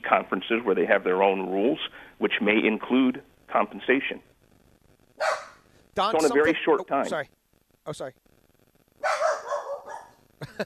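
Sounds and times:
speech: 0.1 - 4.3, 6.0 - 8.3, 10.4 - 10.6
restless dog barking: 5.2 - 5.6, 9.0 - 10.2.

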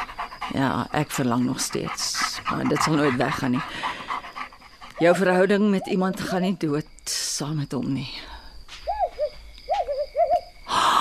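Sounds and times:
speech: 0.5 - 3.9, 5.0 - 8.2
owl hooting: 8.8 - 10.5.

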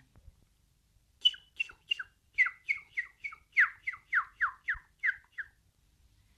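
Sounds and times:
small warbler chirping bright high notes: 1.2 - 5.6.

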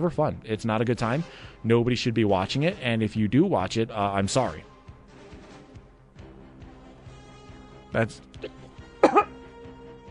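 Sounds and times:
speech: 0.0 - 4.7, 7.9 - 8.6
person coughing from something stuck in the throat: 8.4 - 9.4.

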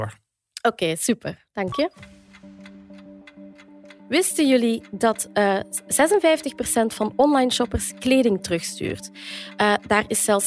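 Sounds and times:
speech: 0.0 - 2.2, 4.1 - 10.4
pitch timer clock ticking: 1.6 - 10.4.

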